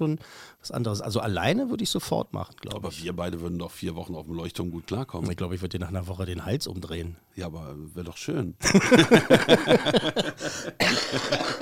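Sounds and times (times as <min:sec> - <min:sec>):
speech: 0:00.0 - 0:11.6
laughter: 0:08.6 - 0:11.6
harsh person coughing: 0:10.7 - 0:11.6.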